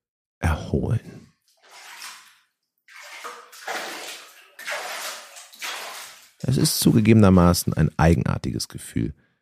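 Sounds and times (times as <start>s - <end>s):
speech: 0.4s - 1.2s, 6.5s - 9.2s
thermal water gushing into a bathtub: 1.6s - 8.0s.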